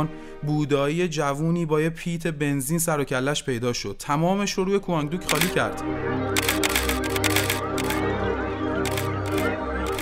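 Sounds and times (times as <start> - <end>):
speech: 0.0 - 6.8
camera shutter clicks: 5.3 - 5.6, 6.4 - 8.0, 8.9 - 10.0.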